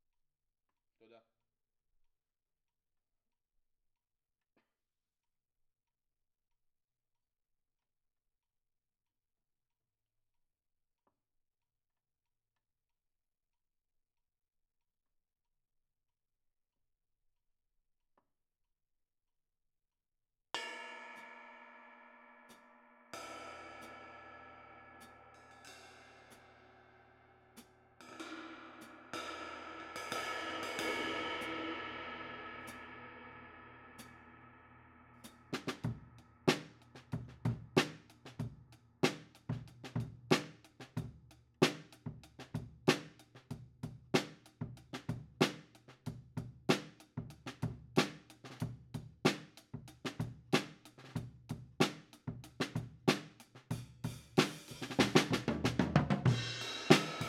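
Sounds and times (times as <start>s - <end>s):
drum kit: 27.6s - 33.0s, 35.2s - 57.2s.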